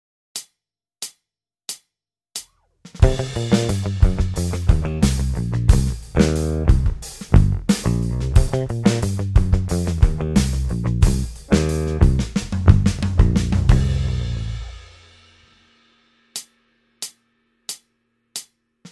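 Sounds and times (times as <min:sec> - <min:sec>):
backing track for electric bass plectrum exercise: 0:03.0 - 0:14.8
electric bass played with a plectrum: 0:03.0 - 0:14.8.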